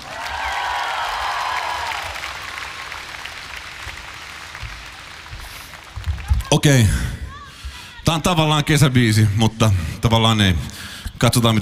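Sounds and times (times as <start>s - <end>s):
crowd applause: 0.0s - 7.1s
crowd cheering: 0.0s - 7.7s
speech: 6.5s - 7.1s, 8.1s - 11.6s.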